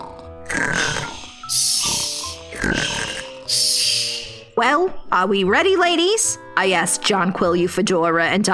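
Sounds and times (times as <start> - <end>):
person making exaggerated snoring sounds: 0.5 - 4.5
breathy hissing exhale: 0.5 - 4.6
speech: 4.6 - 8.5.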